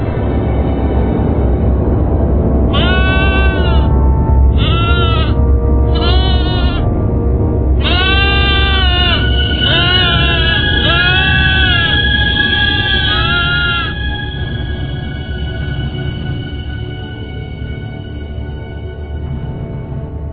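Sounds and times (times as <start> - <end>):
low rumble: 0.0 - 20.3
goat bleating: 2.7 - 3.9, 4.5 - 6.9, 7.8 - 12.1, 12.8 - 14.0.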